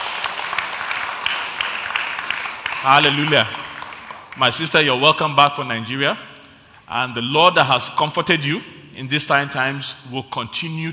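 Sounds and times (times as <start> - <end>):
crowd applauding with dense overlapping claps: 0.0 - 5.0
speech: 2.8 - 3.6, 4.4 - 6.3, 6.9 - 10.9.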